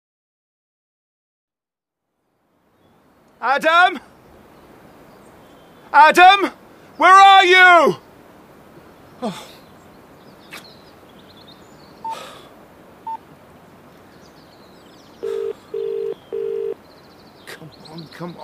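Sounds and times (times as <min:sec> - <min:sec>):
speech: 0:03.4 - 0:04.1, 0:05.9 - 0:08.0, 0:09.2 - 0:09.6, 0:18.2 - 0:18.4
electronic phone ringing tones: 0:15.2 - 0:16.8
short single beeps of phone buttons: 0:15.2 - 0:16.8.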